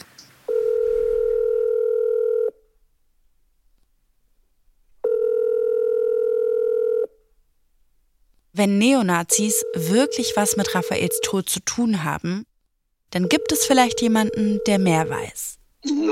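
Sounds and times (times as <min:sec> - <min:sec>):
ringing tones of an outgoing telephone call: 0:00.5 - 0:02.6, 0:05.0 - 0:07.1, 0:09.3 - 0:11.4, 0:13.2 - 0:15.4
speech: 0:08.6 - 0:12.5, 0:13.1 - 0:16.1.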